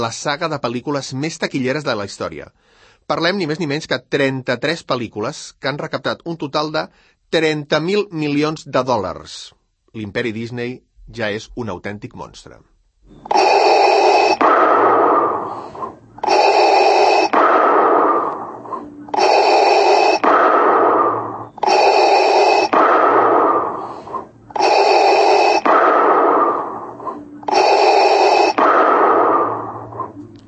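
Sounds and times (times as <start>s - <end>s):
speech: 0.0s - 13.6s
masked villain's heavy mechanical respirator breathing: 13.0s - 30.4s.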